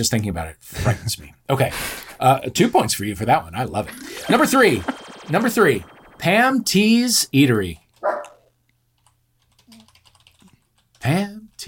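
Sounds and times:
speech: 0.0 - 8.2, 11.0 - 11.6
computer keyboard keys tapping: 9.0 - 11.0.

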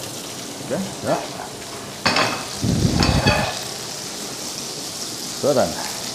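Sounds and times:
pan of Nockerl sizzling while frying: 0.0 - 6.1
speech: 0.7 - 1.6, 5.4 - 5.9
stirring or scraping in a pan of Nockerl: 1.1 - 3.8.

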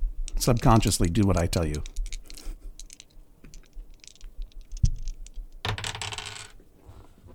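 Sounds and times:
speech: 0.4 - 2.0
pair of small hard dice rolling across a table: 1.7 - 6.6.

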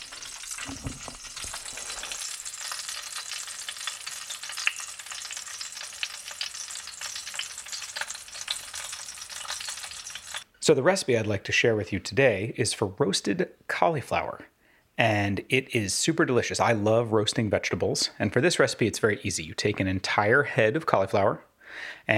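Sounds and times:
food frying in a pan: 0.0 - 10.5
speech: 10.6 - 22.1.

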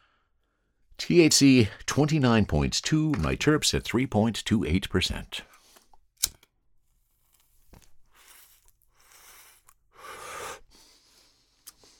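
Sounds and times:
speech: 1.1 - 5.5
person inhaling smoke from a cannabis joint: 8.2 - 11.9.

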